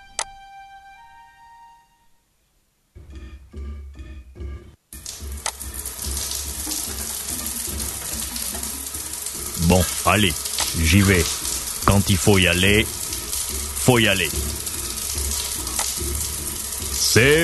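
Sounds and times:
shower water running: 0:05.0 - 0:17.4
speech: 0:09.7 - 0:13.0, 0:13.8 - 0:14.6, 0:17.2 - 0:17.4.

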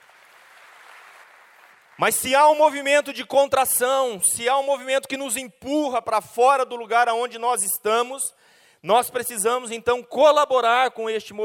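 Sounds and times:
crowd applauding: 0:00.0 - 0:02.1
speech: 0:02.0 - 0:11.4.

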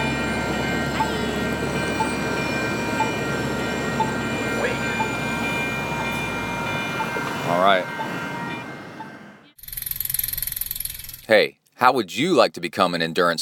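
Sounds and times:
passenger train rumbling past a rail crossing: 0:00.0 - 0:09.5
rail crossing bell dinging: 0:00.0 - 0:09.6
speech: 0:11.3 - 0:13.4.

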